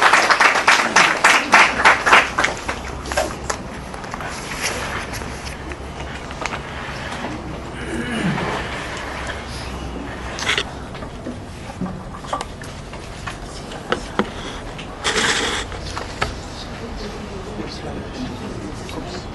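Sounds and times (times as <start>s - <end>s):
audience clapping for a guest speaker: 0.0s - 4.2s
crowd murmur: 0.0s - 19.3s.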